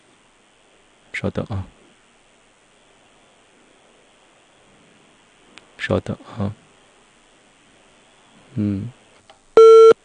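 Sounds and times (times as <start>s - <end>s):
speech: 1.2s - 1.8s, 5.9s - 6.6s, 8.5s - 9.0s
telephone busy signal on a call that will not go through: 9.6s - 10.0s.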